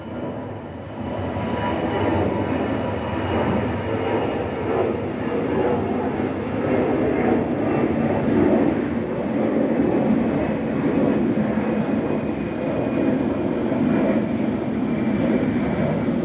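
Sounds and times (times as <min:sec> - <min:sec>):
airplane passing overhead: 0:00.0 - 0:16.2.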